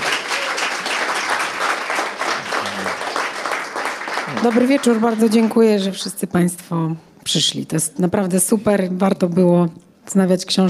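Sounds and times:
sizable crowd applauding: 0:00.0 - 0:06.0
speech: 0:04.4 - 0:10.6.

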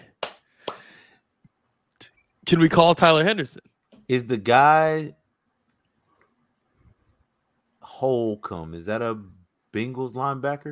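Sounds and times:
hand claps: 0:00.0 - 0:01.0
speech: 0:02.5 - 0:05.2, 0:07.9 - 0:10.6.

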